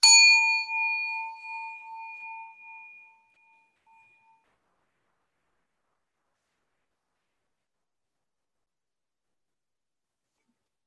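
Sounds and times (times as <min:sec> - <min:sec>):
singing bowl bell struck and ringing: 0:00.0 - 0:04.5.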